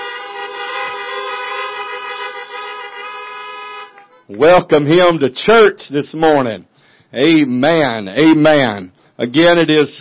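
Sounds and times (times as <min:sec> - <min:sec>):
several car horns honking: 0:00.0 - 0:04.6
speech: 0:04.3 - 0:09.9.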